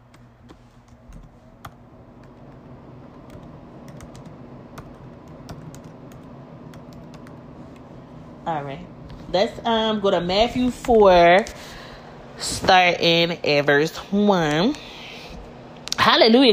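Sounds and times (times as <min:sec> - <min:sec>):
steady low hum: 0:00.0 - 0:16.5
typing on a computer keyboard: 0:03.3 - 0:07.4
speech: 0:08.5 - 0:11.7, 0:12.4 - 0:14.8, 0:16.0 - 0:16.5.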